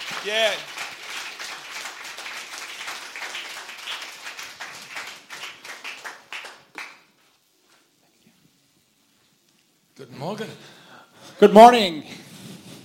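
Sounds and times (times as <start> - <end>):
audience applauding to welcome a guest: 0.0 - 7.2
speech: 0.2 - 0.7, 10.0 - 10.8, 11.4 - 12.2.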